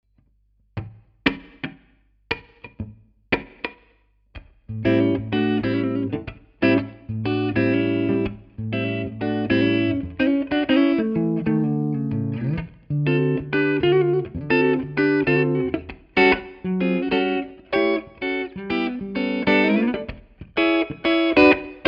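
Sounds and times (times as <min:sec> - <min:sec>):
clean electric guitar on neck pickup: 0:04.4 - 0:21.8.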